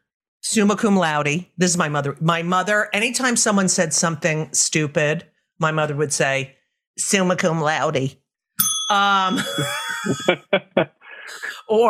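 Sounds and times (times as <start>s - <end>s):
speech: 0.5s - 11.8s
bright bell ringing: 8.6s - 10.5s
people talking and chuckling: 9.3s - 11.5s.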